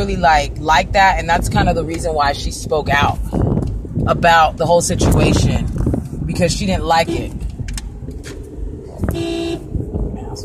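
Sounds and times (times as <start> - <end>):
speech: 0.0 - 3.4, 4.1 - 5.7, 6.3 - 7.4
low rumble of road noise from inside a moving car: 0.0 - 10.4
car horn blaring in traffic in Arizona: 6.9 - 7.5, 9.0 - 9.7.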